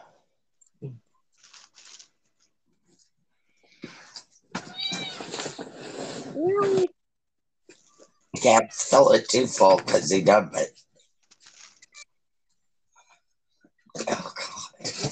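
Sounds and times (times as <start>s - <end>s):
speech: 0.8s - 1.0s, 8.4s - 10.7s
cats meowing indoors: 4.5s - 5.7s.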